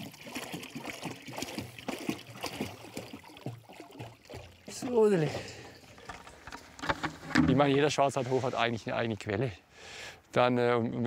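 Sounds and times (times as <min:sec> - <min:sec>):
water splashing into a container filled for goats on a pasture: 0:00.0 - 0:07.8
speech: 0:04.8 - 0:05.5, 0:07.5 - 0:11.0
small knocks and clatters: 0:05.3 - 0:07.9.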